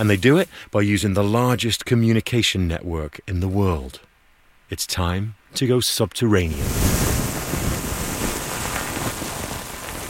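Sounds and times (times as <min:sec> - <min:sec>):
speech: 0:00.0 - 0:04.1, 0:04.7 - 0:07.7
steady rain falling in a forest: 0:06.4 - 0:10.0.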